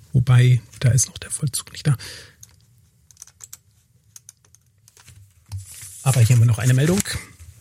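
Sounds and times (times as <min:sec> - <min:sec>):
speech: 0:00.2 - 0:02.4, 0:06.0 - 0:07.2
computer keyboard and mouse clicking: 0:02.4 - 0:05.0.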